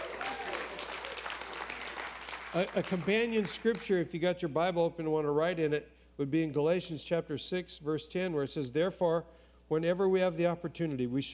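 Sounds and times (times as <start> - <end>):
room full of people clapping: 0.0 - 3.7
speech: 2.5 - 11.3.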